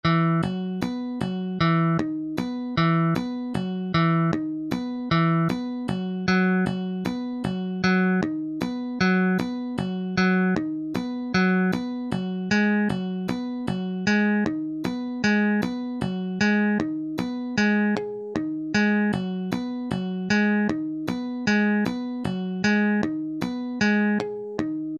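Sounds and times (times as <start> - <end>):
picked bass: 0.0 - 24.9.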